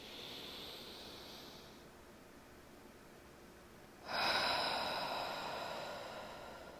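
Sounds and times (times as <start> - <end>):
deep inhale breath during a breathing and stretching exercise: 0.0 - 1.9, 4.0 - 6.7.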